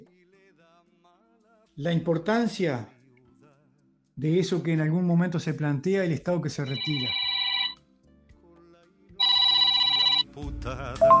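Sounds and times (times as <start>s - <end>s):
speech: 1.8s - 3.0s, 4.2s - 7.2s
electronic ringtone of an incoming phone call: 6.6s - 7.8s, 9.2s - 10.3s, 11.0s - 11.1s.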